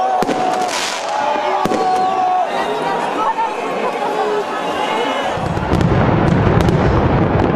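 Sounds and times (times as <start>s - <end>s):
firework bangs over a New Year's midnight crowd at the Eiffel Tower: 0.0s - 2.3s, 5.4s - 7.5s
large outdoor New Year's midnight crowd roaring in Paris: 0.0s - 7.5s.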